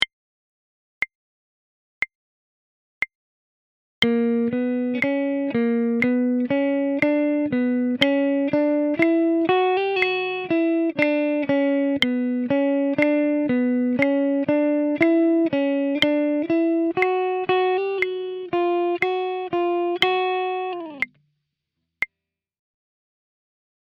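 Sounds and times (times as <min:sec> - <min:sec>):
guitar: 0:04.0 - 0:21.3.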